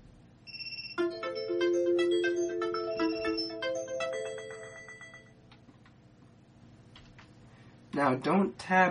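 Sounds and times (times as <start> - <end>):
electronic chimes alert sound preview: 0.5 - 5.3
speech: 8.0 - 8.8.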